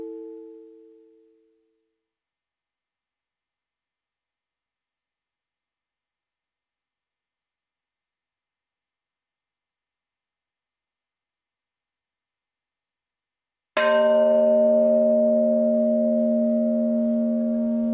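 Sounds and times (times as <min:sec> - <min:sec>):
bells ringing: 0:13.9 - 0:17.9.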